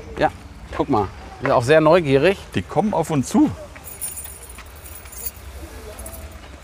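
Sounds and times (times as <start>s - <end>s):
faint voices: 0.0s - 6.6s
speech: 0.2s - 3.6s
keys jangling: 3.9s - 6.6s.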